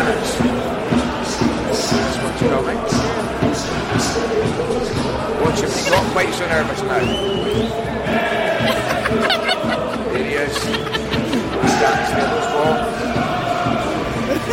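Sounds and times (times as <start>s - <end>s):
large crowd singing together: 0.0s - 14.5s
man speaking over the din: 5.5s - 6.8s, 10.1s - 12.8s
laughter: 5.5s - 7.1s, 8.2s - 14.5s
scattered shouts: 8.0s - 14.5s.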